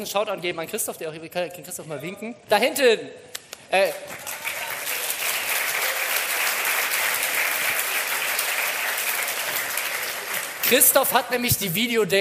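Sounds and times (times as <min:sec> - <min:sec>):
speech: 0:00.0 - 0:04.4, 0:10.7 - 0:12.1
live audience applause: 0:04.1 - 0:11.1.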